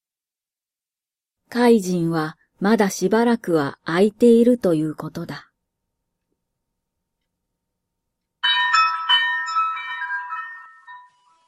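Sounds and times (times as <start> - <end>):
speech: 1.5 - 5.5
cowbell on a shop entrance ringing as a customer walks in: 8.4 - 11.4.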